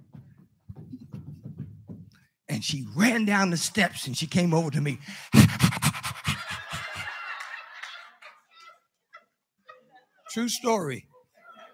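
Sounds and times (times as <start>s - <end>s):
speech: 2.6s - 5.6s, 10.4s - 11.1s
person imitating a dog panting: 5.2s - 6.8s
laughter: 5.3s - 11.7s.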